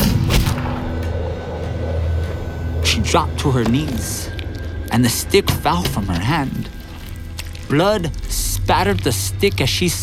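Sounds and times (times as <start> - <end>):
pistol shot fired by a soldier on horseback: 0.0 - 0.9
dense rumbling wash of noise: 0.6 - 5.7
speech: 3.0 - 6.8, 7.7 - 10.0.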